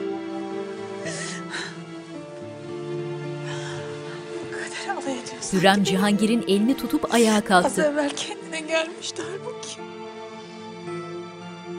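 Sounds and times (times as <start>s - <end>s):
sustained mournful musical backdrop: 0.0s - 11.7s
woman sobbing on someone's shoulder: 1.0s - 1.8s, 7.0s - 8.5s
speech: 5.4s - 9.9s.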